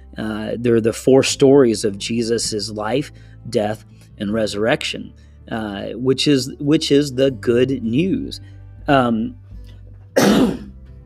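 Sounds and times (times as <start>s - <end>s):
speech: 0.2s - 9.4s, 10.2s - 10.6s
harsh raspy cough: 10.2s - 10.7s
voiced throat sound: 10.2s - 10.7s.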